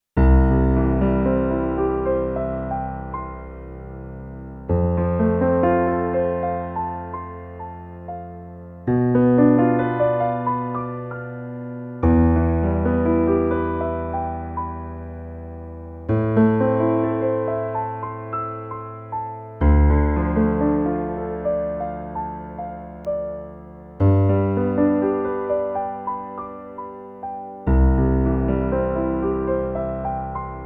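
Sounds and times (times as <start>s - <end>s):
piano through a preamp: 0.0s - 30.6s.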